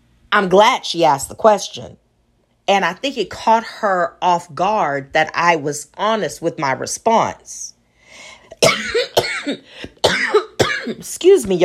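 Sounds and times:
speech: 0.3s - 2.0s, 2.7s - 7.8s, 8.6s - 11.6s
short breaths: 7.8s - 8.6s, 9.6s - 10.0s
person coughing harshly: 8.5s - 11.1s.

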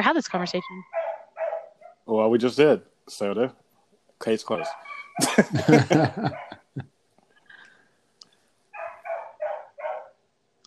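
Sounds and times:
speech: 0.0s - 1.0s, 2.1s - 3.6s, 4.2s - 6.9s
dog barking: 0.6s - 2.0s, 4.5s - 6.7s, 8.8s - 10.2s
dog yelping: 0.6s - 2.0s, 4.5s - 5.3s, 6.2s - 6.6s, 8.8s - 10.2s
laughter: 5.2s - 6.8s.

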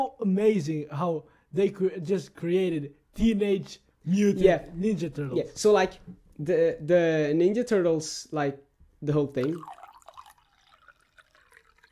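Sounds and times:
speech: 0.0s - 9.8s
water sloshing and trickling in a glass: 9.4s - 11.9s.

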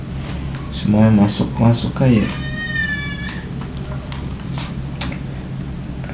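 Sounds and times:
steady low room hum: 0.0s - 6.1s
speech: 0.8s - 2.5s
baby crying: 2.0s - 3.7s.

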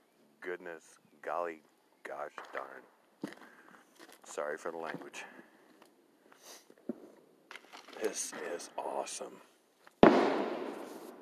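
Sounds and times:
speech: 0.4s - 5.5s, 8.0s - 9.5s
firework exploding outdoors: 10.0s - 11.1s.

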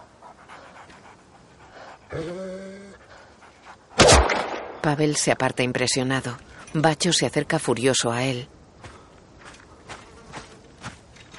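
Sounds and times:
injured dog panting harshly: 0.0s - 2.2s, 2.9s - 4.0s
speech: 2.1s - 2.6s, 4.8s - 8.6s.

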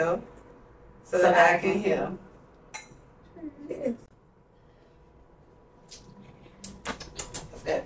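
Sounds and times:
speech: 0.0s - 0.4s, 1.1s - 2.2s
drinking glasses clinking together in a toast: 2.7s - 3.1s.

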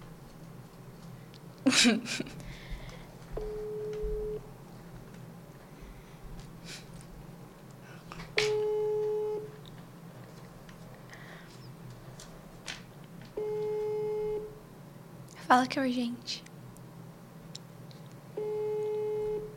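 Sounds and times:
speech: 1.6s - 2.6s, 15.5s - 16.5s
ringback tone of an outgoing telephone call: 3.4s - 4.5s, 8.5s - 9.5s, 13.4s - 14.6s, 18.4s - 19.5s.

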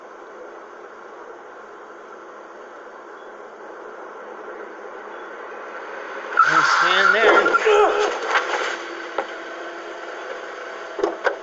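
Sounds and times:
car skidding with tire squeal: 6.3s - 8.7s.

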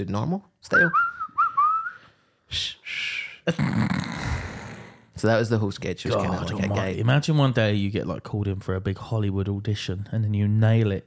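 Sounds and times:
speech: 0.0s - 1.1s, 2.5s - 4.3s, 5.2s - 11.0s
person attempting to whistle: 0.8s - 2.1s.

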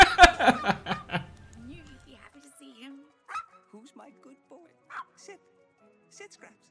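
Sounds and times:
laughter: 0.0s - 1.4s
puppy barking and yipping: 3.3s - 3.5s.

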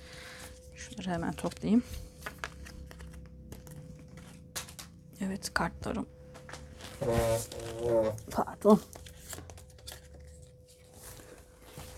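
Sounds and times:
rustling and handling noise: 0.0s - 5.0s, 6.3s - 11.9s
speech: 1.1s - 2.1s, 5.2s - 6.2s, 7.0s - 9.0s
chair creaking in short squeaky groans: 6.7s - 8.4s.

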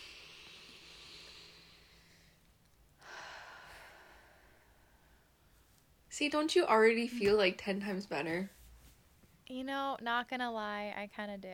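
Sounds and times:
deep breath in and out: 0.0s - 5.7s
speech: 6.2s - 8.6s, 9.5s - 11.5s.

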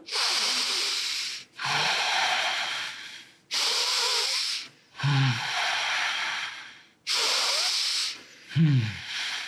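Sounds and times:
ocean-style breathing through the nose: 0.0s - 9.4s.

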